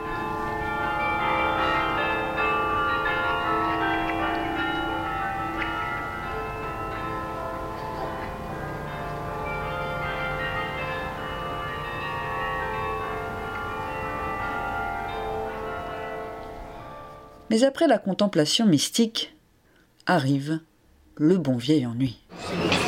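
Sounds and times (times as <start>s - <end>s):
several church bells pealing together: 0.0s - 17.6s
speech: 17.5s - 19.3s, 20.1s - 22.7s.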